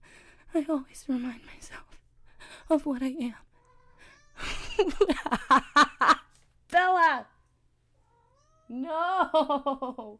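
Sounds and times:
speech: 0.5 - 1.9, 2.7 - 3.5, 4.8 - 6.1, 6.7 - 7.3, 8.7 - 10.1
cat meowing: 3.6 - 4.5, 8.1 - 8.7.

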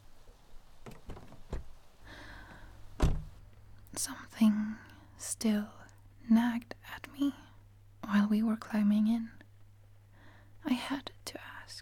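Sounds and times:
clicks and soft thump: 0.8 - 1.8
solid car door thunk: 0.8 - 1.8, 2.9 - 3.4
speech: 4.0 - 7.4, 8.1 - 9.4, 10.6 - 11.8.

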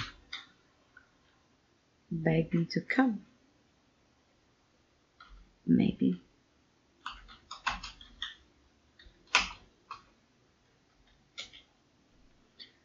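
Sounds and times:
slow keyboard typing with one hand: 0.0 - 0.6, 5.2 - 5.6, 7.0 - 10.2, 10.9 - 11.8
speech: 2.1 - 3.3, 5.7 - 6.2.

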